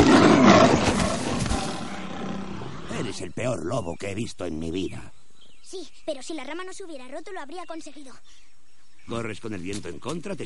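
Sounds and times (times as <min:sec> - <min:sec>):
black panther roaring while pouncing in the jungle: 0:00.0 - 0:03.2
speech: 0:03.2 - 0:10.4.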